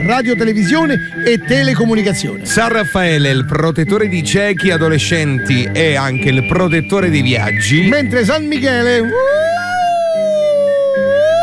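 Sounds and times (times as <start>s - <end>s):
speech: 0.0s - 9.7s
siren wailing with a rich buzzy tone: 9.1s - 11.4s.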